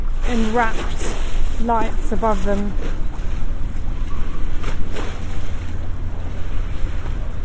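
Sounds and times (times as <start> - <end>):
river water lapping against an embankment edge in London: 0.0 - 7.4
steady windy rumble: 0.0 - 7.4
speech: 0.3 - 3.0.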